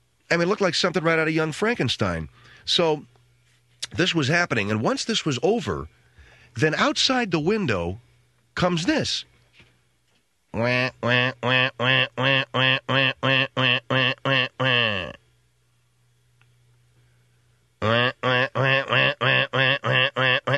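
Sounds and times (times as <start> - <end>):
speech: 0.3 - 3.1, 3.9 - 8.0, 8.6 - 9.3, 10.5 - 15.2, 17.8 - 20.2
duck quacking in distress: 10.6 - 15.2, 17.8 - 20.5.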